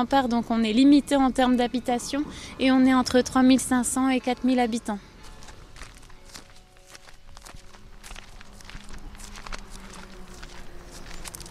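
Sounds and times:
speech: 0.0 - 5.1
low constant hum: 0.0 - 11.5
footsteps climbing a few steps onto town ramparts: 5.2 - 11.5.

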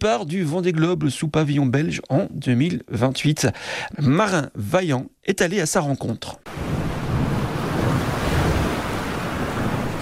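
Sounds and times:
speech: 0.0 - 6.7
rough sea waves pounding a boat hull on a raging sea: 6.5 - 10.0
steady wind roaring over the sea: 6.5 - 10.0.

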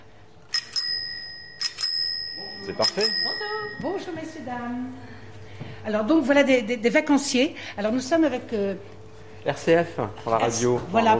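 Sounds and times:
1960 bicycle bell ringing: 0.5 - 4.4
speech: 2.7 - 11.1.

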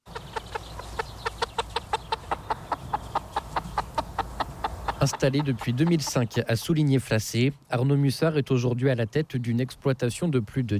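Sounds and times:
broiler chickens clucking on a poultry farm: 0.0 - 7.6
speech: 5.0 - 10.7.

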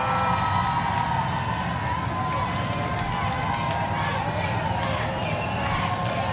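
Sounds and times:
siren-like tones: 0.0 - 3.4
large outdoor crowd chanting and singing thank you: 0.0 - 6.3
vehicle noise: 0.0 - 6.3.

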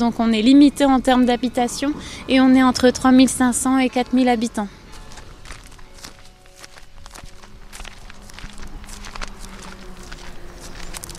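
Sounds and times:
speech: 0.0 - 4.8
footsteps climbing a few steps onto town ramparts: 4.9 - 11.1.

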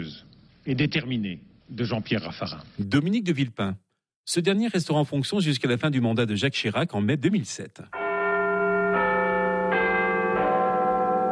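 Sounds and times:
speech: 0.0 - 8.0
cracked clock tower bell in London tolling the hour: 8.0 - 11.3.

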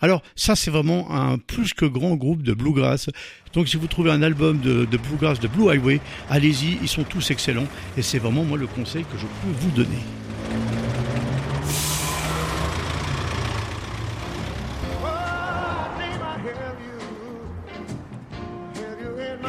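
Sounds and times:
speech: 0.0 - 10.8
bus engine idling with low steady rumble: 3.4 - 17.7
bus brakes squealing as it settles: 3.5 - 16.4
bus air brakes hissing: 6.0 - 6.3, 7.7 - 8.0, 11.4 - 13.8.

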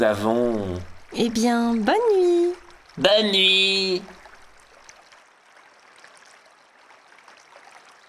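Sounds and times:
speech: 0.0 - 2.4, 3.0 - 4.2
river rushing and burbling: 0.0 - 8.0.

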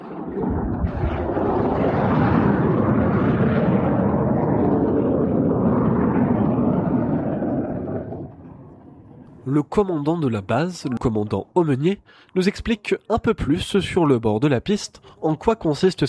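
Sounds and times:
fighter jets roaring on an air base runway during simulated carrier landings: 0.0 - 9.4
speech: 9.5 - 16.0.

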